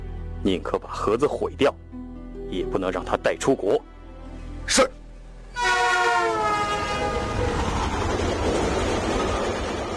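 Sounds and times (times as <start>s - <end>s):
speech: 0.4s - 1.9s, 2.5s - 3.9s, 4.7s - 5.0s
train rolling on the tracks at a railway station: 5.2s - 9.9s
train horn blaring at a railway station: 5.5s - 7.8s.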